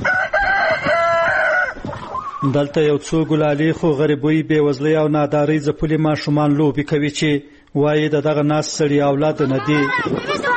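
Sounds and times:
rooster crowing in a house's yard: 0.0 - 1.9
speech: 2.4 - 10.5.

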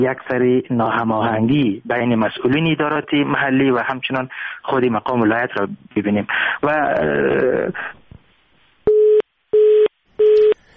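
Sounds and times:
speech: 0.0 - 8.0
telephone busy tone after a call-in is cut off: 8.9 - 10.6.

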